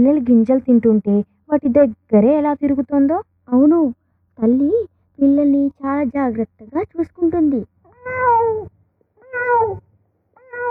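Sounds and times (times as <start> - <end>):
speech: 0.0 - 8.7, 9.3 - 9.9
cat meowing: 7.9 - 10.7.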